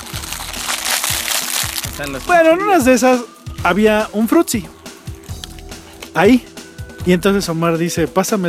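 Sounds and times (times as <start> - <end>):
crunchy chewing of snacks: 0.0 - 2.1
snack wrapper crinkling: 0.0 - 2.3
speech: 2.0 - 4.8, 6.1 - 8.4.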